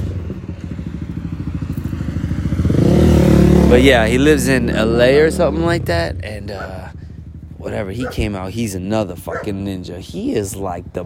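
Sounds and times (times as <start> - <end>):
motorcycle engine rumbling as it passes: 0.0 - 11.0
speech: 3.7 - 6.9, 7.6 - 11.0.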